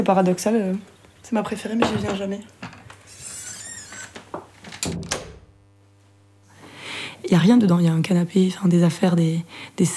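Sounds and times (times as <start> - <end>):
speech: 0.0 - 2.6, 7.3 - 9.9
house door creaking: 1.7 - 5.6.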